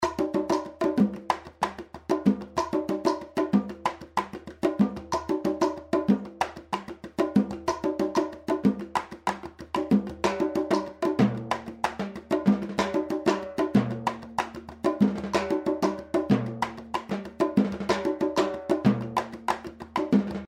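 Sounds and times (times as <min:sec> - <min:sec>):
preset drum groove: 0:00.0 - 0:20.4.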